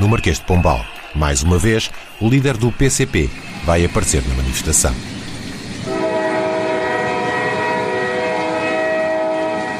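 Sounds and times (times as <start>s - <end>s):
heavy rumble of a passing train: 0.0s - 9.7s
speech: 0.1s - 5.2s
loud sustained train horn: 5.8s - 9.7s.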